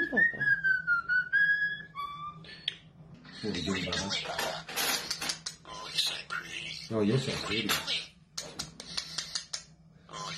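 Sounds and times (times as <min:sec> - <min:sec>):
one-year-old pet bird mimicking a wolf whistle: 0:00.2 - 0:02.4
speech: 0:03.4 - 0:04.7, 0:06.9 - 0:08.1.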